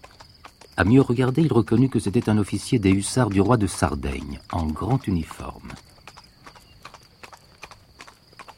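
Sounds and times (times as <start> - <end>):
black horse hooves clip-clopping on the road to Mont-Genèvre: 0.0 - 8.5
speech: 0.8 - 5.9.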